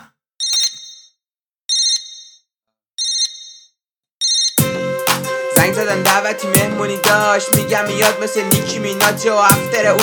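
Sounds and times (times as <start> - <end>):
mobile phone ringtone from an incoming call: 0.4 - 2.4, 3.0 - 4.6
speech: 5.7 - 10.0.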